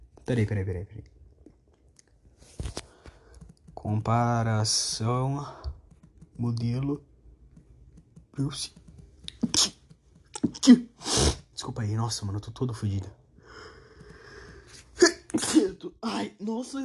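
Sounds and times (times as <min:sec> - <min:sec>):
speech: 0:00.3 - 0:01.2, 0:03.9 - 0:05.8, 0:06.4 - 0:07.1, 0:08.4 - 0:08.8, 0:10.6 - 0:13.2, 0:15.4 - 0:16.8
sharp gasping intakes of breath before a sneeze: 0:13.4 - 0:14.9
forceful loud sneeze: 0:15.0 - 0:16.3.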